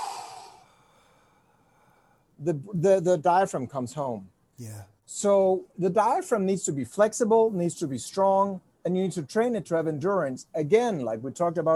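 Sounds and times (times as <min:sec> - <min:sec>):
breathy exhale: 0:00.0 - 0:02.3
speech: 0:02.4 - 0:11.7.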